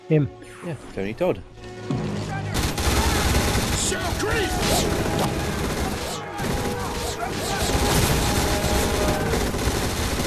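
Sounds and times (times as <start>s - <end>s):
speech: 0.1s - 1.8s, 3.9s - 5.5s
sustained rapid gunfire barrage: 2.6s - 10.2s.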